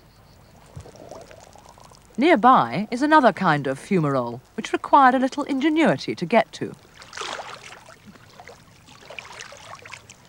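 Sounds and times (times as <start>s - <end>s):
water splashing as someone swims in warm water near hot lava: 0.5s - 4.6s, 6.6s - 10.2s
speech: 2.2s - 6.9s.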